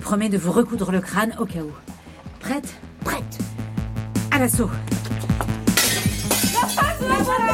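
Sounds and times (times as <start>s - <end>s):
speech: 0.1s - 3.3s, 4.4s - 5.1s
window glass smashing at a French polling station: 5.7s - 7.4s.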